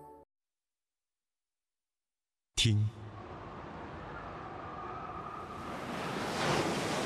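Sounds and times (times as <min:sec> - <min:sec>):
speech: 0:02.6 - 0:03.0
steady windy roar: 0:03.0 - 0:07.0
ocean surf rolling in with a wave breaking: 0:03.2 - 0:07.0.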